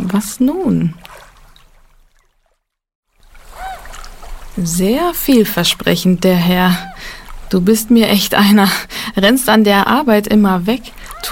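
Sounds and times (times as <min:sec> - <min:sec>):
water lapping and sloshing against a small rocking boat: 0:00.0 - 0:11.3
speech: 0:00.1 - 0:01.2, 0:04.6 - 0:11.3
high creak of a rocking boat: 0:03.5 - 0:04.0, 0:11.0 - 0:11.3.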